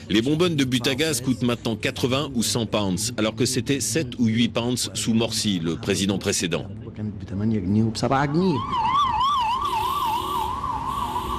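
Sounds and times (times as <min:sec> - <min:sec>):
city traffic hum: 0:00.0 - 0:11.3
speech: 0:00.1 - 0:08.9
police car sirens wailing through a busy street: 0:08.2 - 0:11.3.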